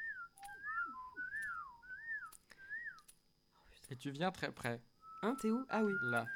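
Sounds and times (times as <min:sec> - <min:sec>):
person whistling a soft wavering melody through pursed lips: 0:00.0 - 0:03.1, 0:05.0 - 0:06.3
speech: 0:03.9 - 0:06.3.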